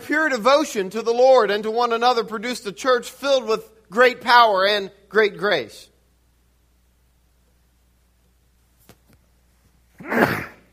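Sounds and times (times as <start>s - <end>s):
speech: 0.1s - 5.9s, 10.0s - 10.4s
person sneezing: 10.0s - 10.7s.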